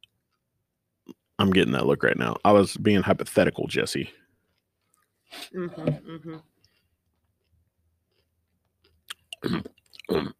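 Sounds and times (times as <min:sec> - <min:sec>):
speech: 0:01.4 - 0:04.2, 0:05.3 - 0:06.5, 0:09.4 - 0:10.3
crunchy chewing of food: 0:06.6 - 0:10.3.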